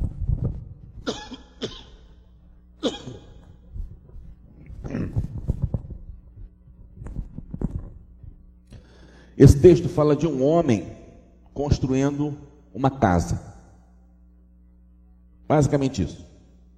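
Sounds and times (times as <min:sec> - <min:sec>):
person coughing: 0:01.0 - 0:02.2, 0:02.8 - 0:03.6, 0:04.8 - 0:05.4
person grumbling while clearing throat: 0:01.0 - 0:02.2, 0:02.8 - 0:03.6, 0:04.6 - 0:05.6
speech: 0:09.4 - 0:11.0, 0:11.6 - 0:13.5, 0:15.5 - 0:16.3.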